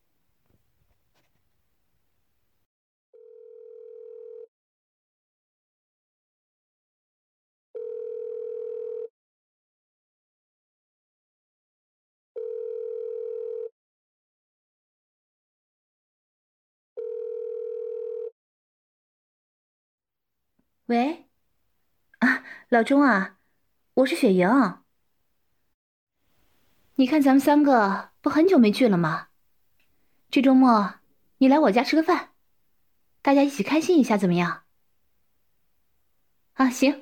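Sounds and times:
phone ringback tone: 3.2s - 4.5s, 7.8s - 9.1s, 12.4s - 13.7s, 17.0s - 18.3s
speech: 20.9s - 21.2s, 22.7s - 23.4s, 24.0s - 24.8s, 27.0s - 29.3s, 30.3s - 32.3s, 33.2s - 34.6s, 36.6s - 37.0s.

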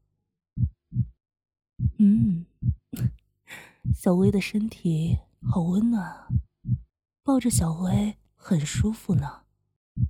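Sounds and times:
heartbeat thumping in soft paired beats: 0.6s - 1.1s, 1.8s - 3.2s, 3.8s - 9.4s
breathy vocal hum: 2.0s - 3.1s
speech: 2.0s - 3.2s, 3.9s - 6.4s, 7.3s - 9.4s.

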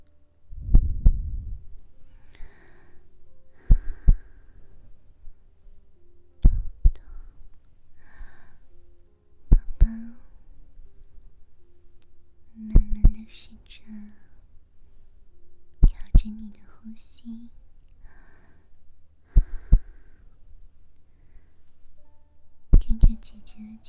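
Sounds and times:
soft tonal murmurs: 0.0s - 23.8s
deep heartbeat: 0.5s - 1.8s
speech: 16.2s - 17.6s, 23.6s - 23.8s.

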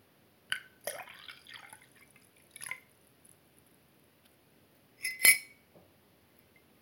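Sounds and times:
water poured into a glass: 0.8s - 2.9s
glass clinking: 5.0s - 5.6s.

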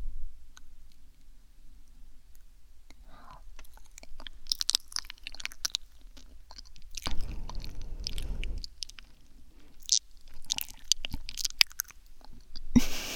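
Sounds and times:
wet chewing of food with mouth clicks and smacks: 3.3s - 12.7s.

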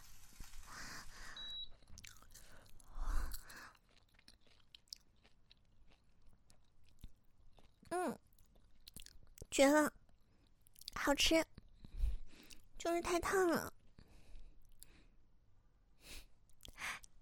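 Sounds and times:
person chewing hot freshly scrambled eggs: 1.0s - 9.5s, 10.1s - 11.0s, 11.6s - 12.8s, 13.8s - 15.0s, 16.5s - 16.8s
speech: 9.6s - 10.0s, 11.1s - 11.5s, 12.8s - 13.8s.

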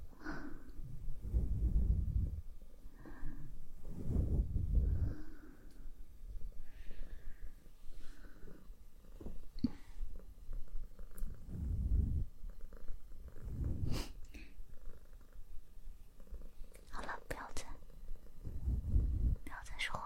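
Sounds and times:
cat purring: 0.0s - 20.0s
person whispering: 16.8s - 17.9s, 19.2s - 20.0s.

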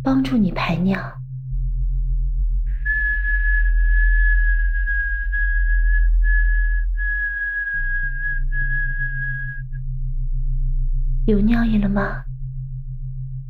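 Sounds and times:
speech: 0.0s - 1.2s, 11.3s - 12.3s
constant low hum: 0.0s - 13.4s
person whistling one steady high note: 2.7s - 9.8s.

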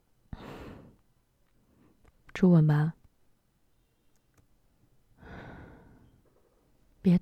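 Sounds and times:
speech: 2.4s - 3.0s, 7.0s - 7.2s
soft breath of air blown gently: 5.2s - 6.2s.

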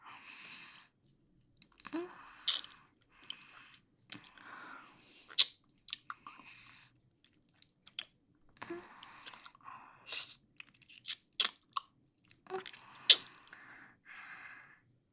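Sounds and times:
chewing a mouthful of cake: 1.6s - 4.5s, 5.2s - 13.7s.

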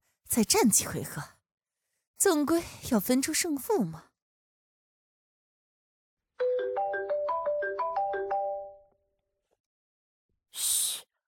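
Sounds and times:
speech: 0.3s - 1.4s, 2.2s - 4.1s
phone ringtone electronic melody: 6.4s - 8.9s
short breathy burst: 10.6s - 11.1s.

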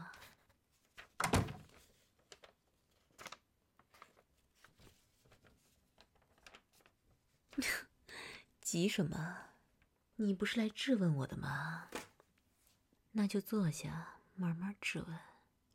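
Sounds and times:
door being closed with a heavy thunk: 1.2s - 1.6s
speech: 7.6s - 7.8s, 8.7s - 9.5s, 10.2s - 12.0s, 13.2s - 15.3s.

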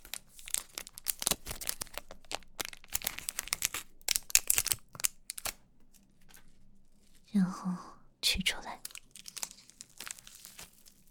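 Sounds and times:
plastic package being torn open by hand: 0.0s - 6.5s, 8.8s - 11.0s
speech: 7.4s - 8.6s.

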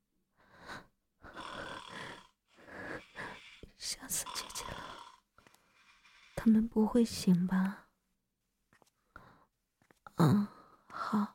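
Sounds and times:
loud snoring from a sleeping father: 1.2s - 6.5s
speech: 3.8s - 5.0s, 6.4s - 7.8s.

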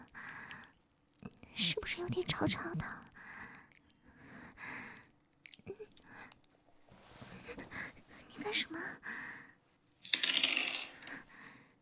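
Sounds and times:
speech: 1.7s - 3.1s, 8.4s - 9.2s
dice rattling and tumbling across a hard surface: 10.0s - 11.2s.

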